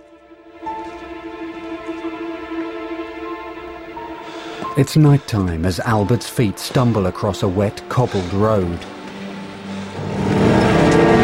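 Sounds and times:
speech: 0:04.8 - 0:09.0
motor car speeding past on a wet cobbled road at night: 0:09.4 - 0:11.2.

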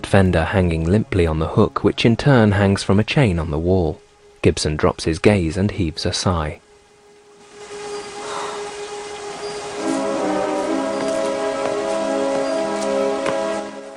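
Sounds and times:
torrential rain: 0:00.0 - 0:13.9
speech: 0:00.1 - 0:06.6
steady tonal drone: 0:05.7 - 0:13.9.

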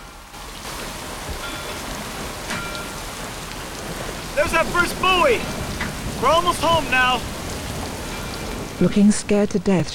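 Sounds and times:
driving rain pouring on a small sailing boat in a storm: 0:00.0 - 0:09.9
speech: 0:04.4 - 0:05.6, 0:06.2 - 0:07.3, 0:08.8 - 0:09.9.

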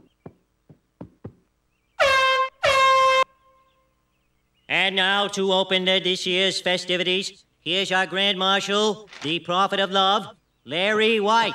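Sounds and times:
soft knocks: 0:00.0 - 0:01.5
air horn blasts: 0:02.0 - 0:03.3
speech: 0:04.9 - 0:11.5.

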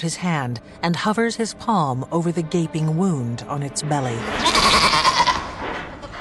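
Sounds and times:
speech: 0:00.0 - 0:05.0
goats bleating in cages: 0:04.4 - 0:06.1.

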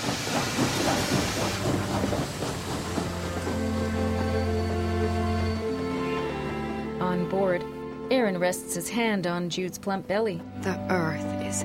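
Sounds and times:
train steam hissing: 0:00.0 - 0:05.8
train chuffing pulling out of a station: 0:00.0 - 0:06.8
speech: 0:07.1 - 0:11.6.

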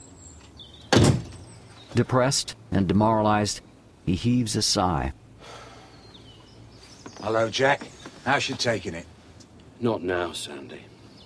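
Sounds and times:
front door shutting: 0:00.8 - 0:01.6
speech: 0:02.0 - 0:05.6, 0:07.2 - 0:09.1, 0:09.8 - 0:10.9.

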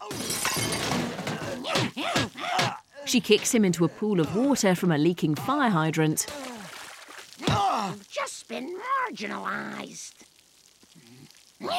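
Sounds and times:
metal dustbin smashed over a person's head in a fight: 0:00.0 - 0:01.6
strained vocal cries: 0:01.2 - 0:03.2, 0:07.4 - 0:08.3, 0:11.3 - 0:11.7
speech: 0:03.1 - 0:06.5, 0:07.9 - 0:10.3, 0:11.6 - 0:11.7.

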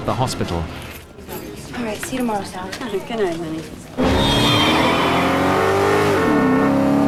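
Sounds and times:
speech: 0:00.0 - 0:00.9, 0:01.8 - 0:04.5
tire noise: 0:03.9 - 0:07.0
open-top Mercedes car engine revving and accelerating away: 0:04.0 - 0:07.0.

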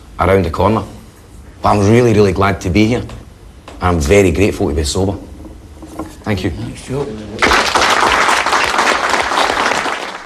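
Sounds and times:
speech: 0:00.2 - 0:01.0, 0:01.6 - 0:03.2, 0:03.8 - 0:05.3, 0:06.0 - 0:08.0
audience applause at a meeting: 0:07.4 - 0:10.2.

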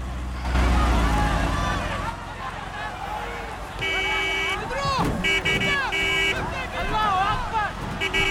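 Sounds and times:
car engine rumbling as it drives off slowly: 0:00.0 - 0:08.2
dense crowd of protesters shouting outside an embassy's gates: 0:00.0 - 0:08.2
protesters banging on a car: 0:04.6 - 0:08.2.

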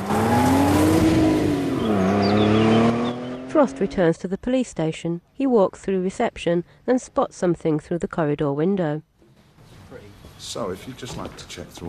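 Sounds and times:
car engine revving hard and accelerating down a road: 0:00.0 - 0:03.9
speech: 0:03.6 - 0:09.1, 0:09.9 - 0:11.8.

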